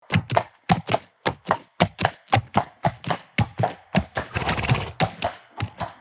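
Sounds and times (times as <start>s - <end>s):
horse galloping: 0.0s - 6.0s
horse snorting: 4.2s - 5.3s.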